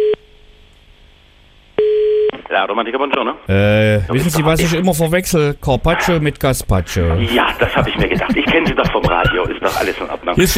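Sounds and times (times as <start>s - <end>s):
telephone busy tone on a repeat call: 1.8s - 2.3s
speech: 2.5s - 10.5s
laughter: 7.1s - 10.5s.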